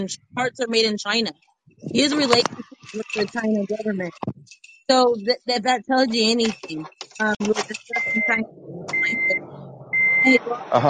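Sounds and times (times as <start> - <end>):
speech: 0.0 - 9.6, 10.2 - 10.8
traffic: 0.0 - 10.8
low murmur of voices: 1.8 - 10.8
vehicle reversing alarm beeps: 7.8 - 10.8.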